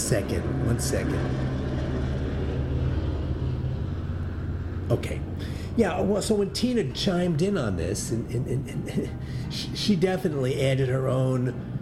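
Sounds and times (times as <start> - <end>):
airplane passing overhead: 0.0 - 11.8
speech: 0.1 - 1.6, 4.9 - 11.7.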